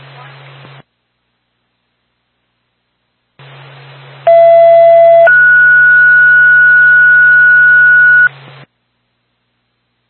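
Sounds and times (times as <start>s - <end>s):
two-tone dispatch radio page for an ambulance: 4.3s - 8.3s.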